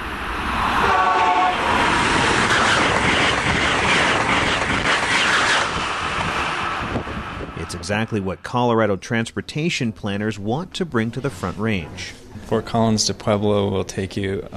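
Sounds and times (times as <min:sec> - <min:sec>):
high-speed train rushing past station: 0:00.0 - 0:08.5
speech: 0:07.9 - 0:14.5.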